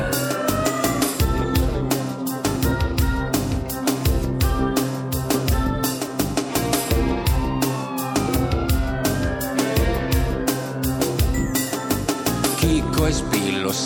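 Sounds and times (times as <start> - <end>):
police siren wailing: 0.0 - 1.6, 6.8 - 12.3
dense music with a loud driving beat and heavy bass: 0.0 - 13.8.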